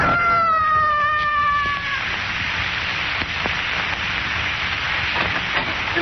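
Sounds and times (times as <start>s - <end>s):
man screaming while falling from a building: 0.0s - 2.1s
steady noisy rush of sound: 0.0s - 5.9s.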